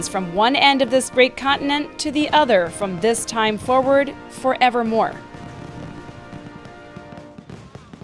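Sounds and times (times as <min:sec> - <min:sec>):
speech: 0:00.0 - 0:05.3
sustained musical tones: 0:00.0 - 0:07.4
fireworks exploding: 0:02.2 - 0:08.0.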